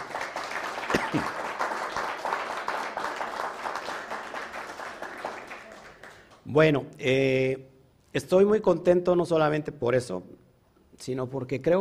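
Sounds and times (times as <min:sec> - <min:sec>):
crowd applauding: 0:00.0 - 0:06.4
speech: 0:01.1 - 0:01.4, 0:06.5 - 0:10.4, 0:11.0 - 0:11.7.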